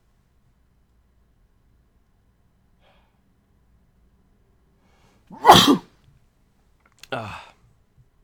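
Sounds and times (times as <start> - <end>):
single loud sneeze: 5.3 - 5.8.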